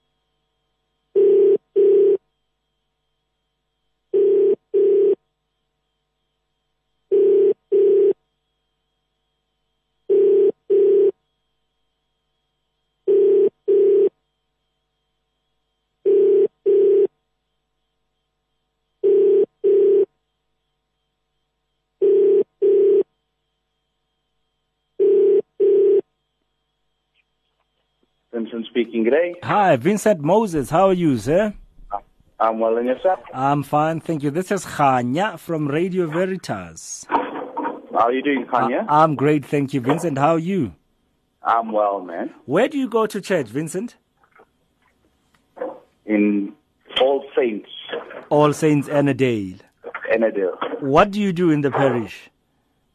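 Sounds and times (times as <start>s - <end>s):
telephone ringback tone on an outgoing call: 1.1s - 2.3s, 4.1s - 5.2s, 7.1s - 8.2s, 10.1s - 11.2s, 13.0s - 14.2s, 16.0s - 17.2s, 19.0s - 20.2s, 22.0s - 23.1s, 25.0s - 26.1s
speech: 28.4s - 37.2s, 38.0s - 40.8s, 41.4s - 44.0s, 46.1s - 52.3s.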